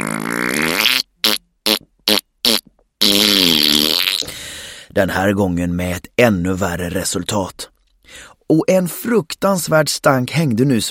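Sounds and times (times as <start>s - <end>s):
long loud wavering fart: 0.0s - 4.3s
speech: 5.0s - 10.8s.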